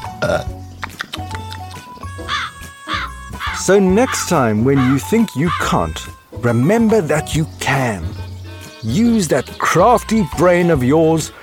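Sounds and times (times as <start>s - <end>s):
short croaky little burp: 0.0s - 1.1s
gulping belch-like bursts: 0.0s - 1.6s
light musical backing with steady tones: 0.0s - 11.4s
speech: 0.2s - 0.6s, 3.6s - 8.2s, 8.8s - 11.4s.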